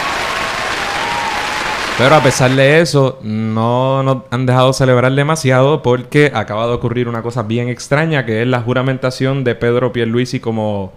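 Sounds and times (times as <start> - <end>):
crowd applauding: 0.0 - 2.6
speech: 2.0 - 10.9.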